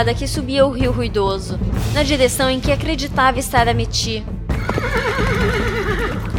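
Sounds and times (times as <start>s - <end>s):
speech: 0.0s - 5.6s
horse whinnying as it approaches: 4.5s - 6.3s.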